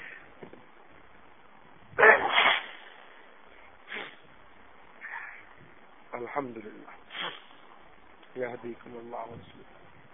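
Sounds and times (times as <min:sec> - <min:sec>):
person sneezing: 0:02.0 - 0:03.0, 0:03.9 - 0:04.2, 0:07.1 - 0:07.6
speech: 0:06.3 - 0:07.4, 0:08.4 - 0:09.8.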